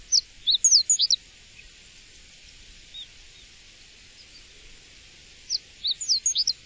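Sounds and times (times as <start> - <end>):
Japanese Reed Bunting calling: 0.1 - 1.2, 5.5 - 6.5.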